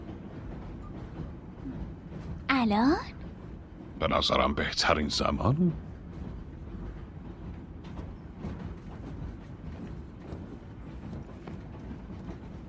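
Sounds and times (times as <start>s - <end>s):
clacks and rattles over the tracks: 0.0s - 12.6s
moving train rumbling: 0.0s - 12.6s
speech: 2.6s - 3.2s, 4.0s - 5.8s.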